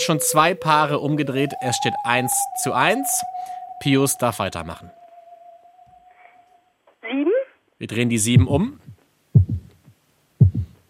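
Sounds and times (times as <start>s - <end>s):
speech: 0.0s - 5.0s, 7.8s - 8.8s
deep heartbeats: 8.4s - 9.8s, 10.4s - 10.8s.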